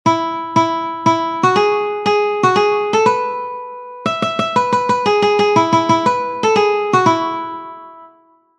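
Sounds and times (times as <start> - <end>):
nursery rhyme melody played on one guitar string: 0.1 - 8.5.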